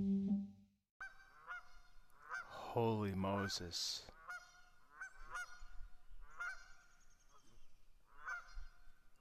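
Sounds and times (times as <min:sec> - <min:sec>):
geese honking in harsh nasal bursts: 0:01.0 - 0:02.6, 0:03.4 - 0:07.0, 0:08.1 - 0:09.1
speech: 0:02.8 - 0:04.1.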